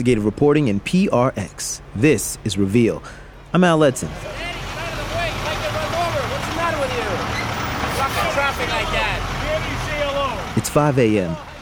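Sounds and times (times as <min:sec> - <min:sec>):
speech: 0:00.0 - 0:04.6, 0:10.7 - 0:11.5
trucks and forklifts rumbling at wholesale produce market: 0:04.2 - 0:10.6.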